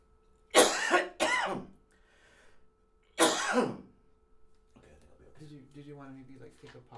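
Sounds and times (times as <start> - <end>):
person with a cold coughing: 0.5 - 1.8, 3.2 - 4.0
wheezy breath: 1.9 - 2.7
speech: 3.6 - 3.8, 5.5 - 6.9.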